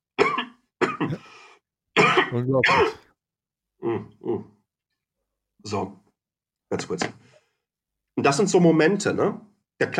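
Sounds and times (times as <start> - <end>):
coughing: 0.2 - 3.2, 3.8 - 4.6
speech: 2.3 - 3.0, 3.8 - 4.6, 5.6 - 6.0, 6.7 - 7.2, 8.2 - 9.9.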